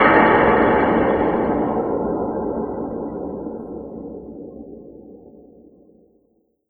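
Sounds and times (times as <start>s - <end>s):
sci-fi explosion: 0.0s - 3.2s.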